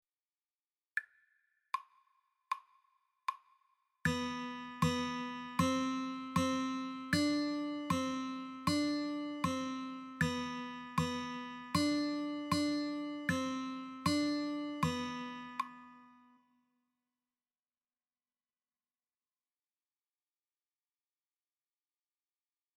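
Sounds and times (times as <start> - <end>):
guitar notes B C D on the 2nd string: 4.1 - 16.3.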